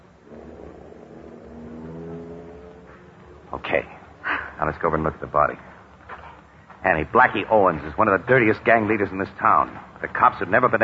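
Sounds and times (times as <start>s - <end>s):
car engine rumbling as the car drives away: 0.0s - 10.8s
speech: 3.5s - 4.0s, 4.6s - 5.7s, 6.8s - 10.8s.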